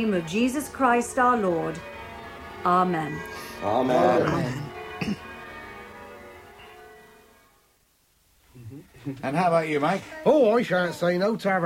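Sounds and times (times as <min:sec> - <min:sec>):
speech: 0:00.0 - 0:02.0, 0:02.6 - 0:05.2, 0:09.0 - 0:11.6
single church bell striking: 0:00.0 - 0:07.6.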